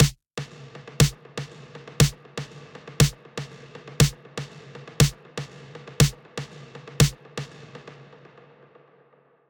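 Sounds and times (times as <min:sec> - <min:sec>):
snare drum hits with feedback echo plugin: 0:00.0 - 0:05.2, 0:06.0 - 0:07.5.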